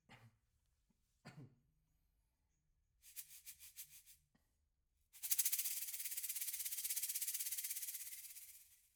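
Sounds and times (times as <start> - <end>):
shaker rhythm: 3.0 - 4.2, 5.2 - 8.9.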